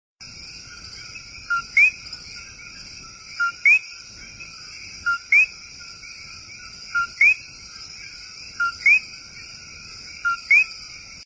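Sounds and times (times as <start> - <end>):
Coqui frog calling a two-note co-qui: 1.0 - 5.7, 6.5 - 9.2, 10.2 - 10.8.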